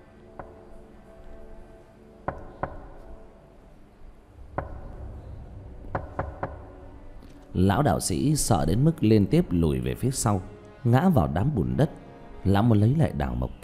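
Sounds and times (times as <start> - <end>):
faint low rumble: 4.3 - 8.9
loud knocking from inside a coffin: 5.9 - 6.7
speech: 7.6 - 13.6.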